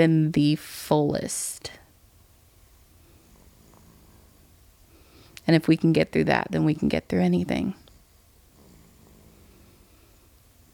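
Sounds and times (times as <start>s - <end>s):
speech: 0.0s - 1.8s, 5.5s - 7.8s
baby snoring softly: 3.2s - 4.5s, 8.5s - 9.9s.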